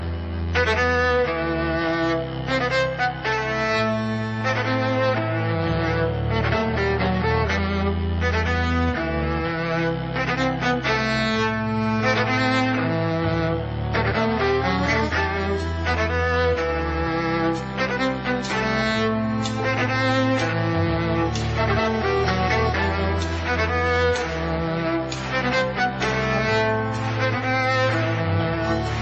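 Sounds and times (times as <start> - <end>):
violin cover in electronica style: 0.0 - 29.0.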